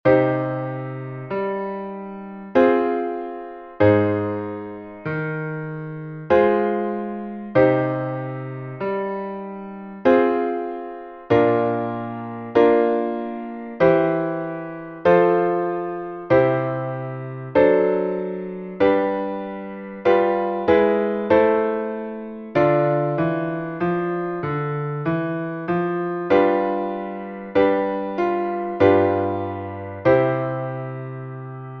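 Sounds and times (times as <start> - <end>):
piano: 0.0 - 31.7.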